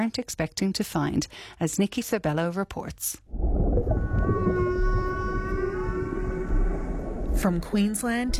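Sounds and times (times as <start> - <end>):
speech: 0.0 - 3.5, 7.4 - 8.3
humpback whale song with long sustained tonal moans: 3.3 - 8.0
steady low rumble of underwater noise: 3.3 - 8.3.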